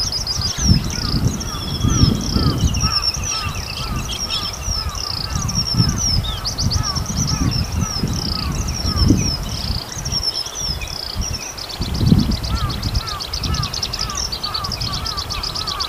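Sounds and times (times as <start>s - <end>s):
Eurasian skylark singing: 0.0s - 15.8s
steady wind noise: 0.0s - 15.8s.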